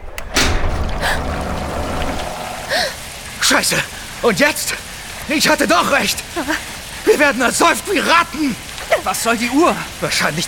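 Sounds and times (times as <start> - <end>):
thud: 0.2 - 3.2
water gushing out of a large round hole: 0.6 - 10.3
speech: 3.5 - 10.4.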